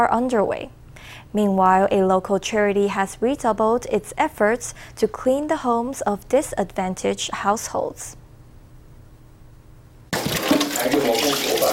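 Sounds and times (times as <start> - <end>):
speech: 0.0 - 8.2
water gushing and splashing from pots and pans emptied by cleaners in a kitchen: 10.2 - 11.7.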